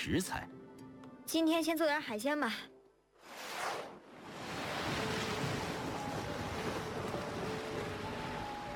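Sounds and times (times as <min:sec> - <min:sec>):
speech: 0:00.0 - 0:00.6, 0:01.3 - 0:02.7
sea waves surging and crashing at rising tide: 0:03.2 - 0:08.7.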